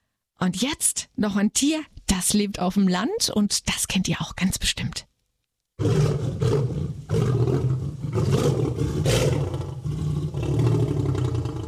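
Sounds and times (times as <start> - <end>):
speech: 0.4 - 5.1, 5.8 - 6.8
lion roaring: 5.8 - 11.6.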